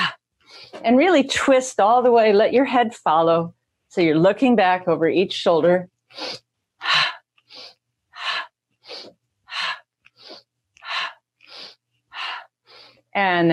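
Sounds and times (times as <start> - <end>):
speech: 0.8 - 7.0, 13.2 - 13.5
forceful breaths through the mouth and nose during a twisting exercise: 6.2 - 13.1.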